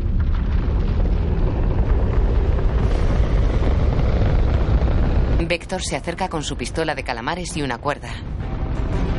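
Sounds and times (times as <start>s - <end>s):
rocket launching up through the roof of a house: 0.2s - 5.8s
speech: 5.5s - 9.0s.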